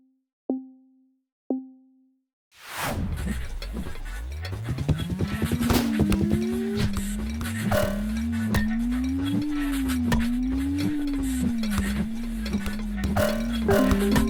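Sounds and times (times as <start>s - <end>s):
steady slightly wavering low drone: 3.0s - 14.2s
bright metallic strikes: 3.6s - 14.2s
game ding-dong chime: 13.3s - 14.2s.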